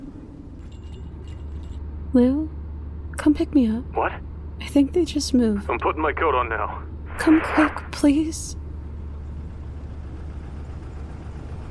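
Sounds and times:
bus engine idling at a stop: 0:00.0 - 0:11.6
speech: 0:02.1 - 0:02.5, 0:03.2 - 0:08.6.

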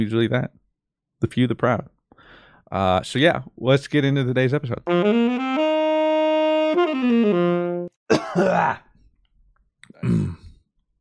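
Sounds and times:
speech: 0:00.0 - 0:00.6, 0:01.2 - 0:02.0, 0:02.7 - 0:05.6, 0:06.9 - 0:08.8, 0:10.0 - 0:10.4
throat clearing on a groggy morning: 0:08.1 - 0:08.8, 0:09.9 - 0:10.6.

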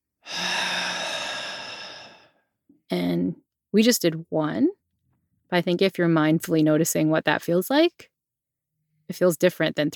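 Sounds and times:
slow audible breath exhale: 0:00.2 - 0:02.4
speech: 0:02.9 - 0:04.8, 0:05.5 - 0:08.1, 0:09.1 - 0:09.9.

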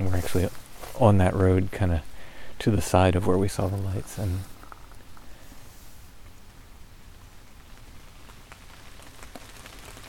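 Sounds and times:
steady rain falling outdoors on an old closed road: 0:00.0 - 0:10.0
speech: 0:00.2 - 0:04.5.

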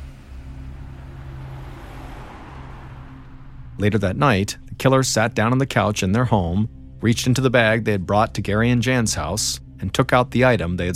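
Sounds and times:
broad road-noise hiss: 0:00.0 - 0:04.7
car engine rumbling as car drives away: 0:00.0 - 0:10.9
speech: 0:03.8 - 0:10.9.

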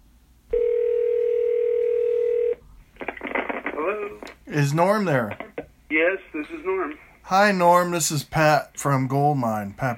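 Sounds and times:
telephone dial tone while placing a call: 0:00.5 - 0:02.6
speech: 0:04.0 - 0:09.9.

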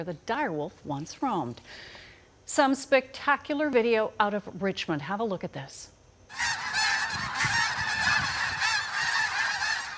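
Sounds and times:
speech: 0:00.0 - 0:06.7
hundreds of snow geese honking on a residential street during migration: 0:06.3 - 0:09.9.

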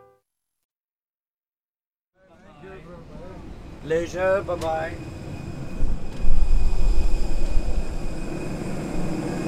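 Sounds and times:
aircraft engines droning at an airport: 0:02.2 - 0:09.4
thin constant whine: 0:02.2 - 0:09.4
speech: 0:03.8 - 0:05.1.

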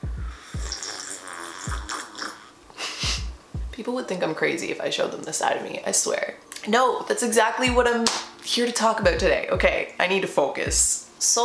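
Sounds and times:
slurping hiss: 0:00.0 - 0:03.3
person sipping tea: 0:00.3 - 0:02.9
gulps and swallows: 0:00.6 - 0:02.6
speech: 0:03.8 - 0:11.4.

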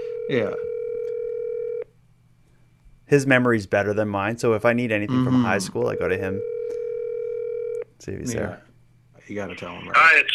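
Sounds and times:
telephone dial tone: 0:00.0 - 0:01.8, 0:06.4 - 0:07.8
faint low hum: 0:00.0 - 0:10.3
speech: 0:00.3 - 0:00.7, 0:03.1 - 0:06.8, 0:08.0 - 0:10.3.

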